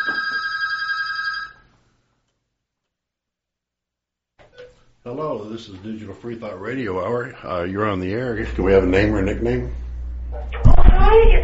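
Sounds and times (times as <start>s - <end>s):
telephone ringing with incoming call: 0.0s - 1.7s
speech: 5.0s - 9.8s, 10.4s - 11.4s.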